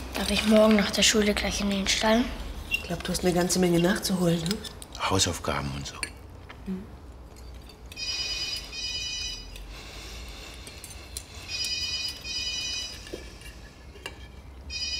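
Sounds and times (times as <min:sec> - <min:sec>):
speech: 0:00.2 - 0:06.1, 0:06.7 - 0:06.9
telephone ringing with bright electronic trilling at home: 0:08.0 - 0:09.6, 0:11.5 - 0:13.1, 0:14.7 - 0:14.9.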